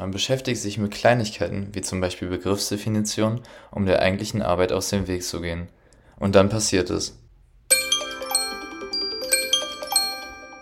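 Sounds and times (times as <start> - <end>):
speech: 0.0 - 7.2
alarm clock ringing with a melodic chime: 7.7 - 10.6.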